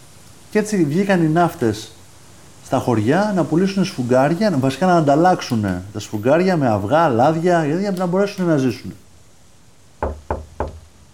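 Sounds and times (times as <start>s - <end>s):
speech: 0.5s - 2.0s, 2.7s - 9.0s
knocking on a house door: 10.0s - 10.9s.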